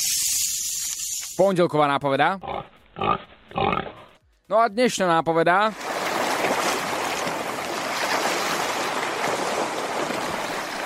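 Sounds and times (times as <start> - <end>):
speech: 1.4 - 3.2, 4.5 - 5.8
rushing water with waves washing and churning: 5.7 - 10.8.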